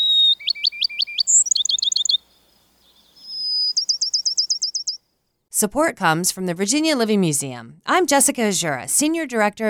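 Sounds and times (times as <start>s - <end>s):
seaside sparrow song: 0.0s - 5.0s
speech: 5.6s - 9.6s.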